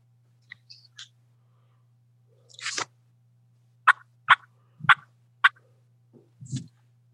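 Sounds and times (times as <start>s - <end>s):
low steady hum: 0.0s - 7.1s
high-pitched wild turkey alarm putts: 3.9s - 5.6s.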